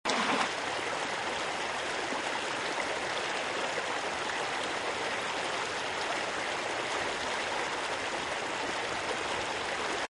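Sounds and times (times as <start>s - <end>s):
river close up: 0.1s - 10.0s.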